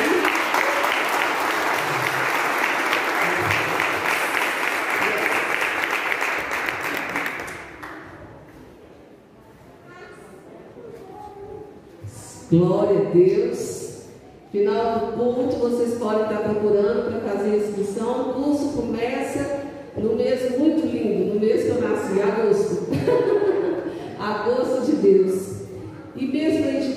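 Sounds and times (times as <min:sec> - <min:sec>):
church audience clapping at the close of a service: 0:00.0 - 0:08.1
speech: 0:12.5 - 0:13.6, 0:14.5 - 0:23.4, 0:24.2 - 0:25.5
laughter: 0:22.9 - 0:24.2.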